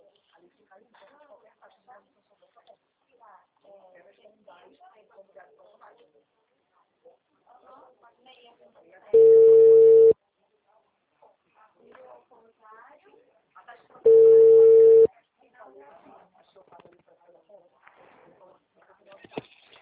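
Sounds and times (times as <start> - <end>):
long steady telephone tones after a dropped phone call: 9.2 - 10.2, 14.1 - 15.1.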